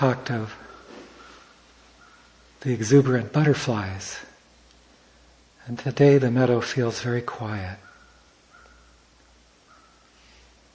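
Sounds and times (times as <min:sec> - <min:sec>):
speech: 0:00.0 - 0:00.7, 0:02.6 - 0:04.3, 0:05.6 - 0:07.9
steady low outdoor hum: 0:00.0 - 0:10.7
crow caws: 0:00.6 - 0:02.4, 0:07.8 - 0:10.2.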